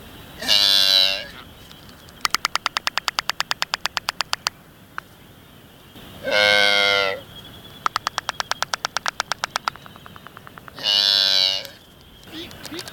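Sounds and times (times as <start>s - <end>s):
black-browed albatross: 0.4s - 5.2s, 6.2s - 12.9s.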